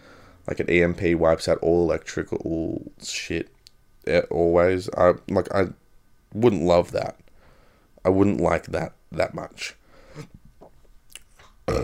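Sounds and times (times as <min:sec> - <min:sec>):
louder broadband burst of breath: 0:00.0 - 0:00.4, 0:07.4 - 0:07.9, 0:09.8 - 0:10.4
speech: 0:00.5 - 0:07.2, 0:08.0 - 0:10.4, 0:11.7 - 0:11.8
quiet mouth noises: 0:10.2 - 0:11.8
small short throaty burp: 0:11.4 - 0:11.8.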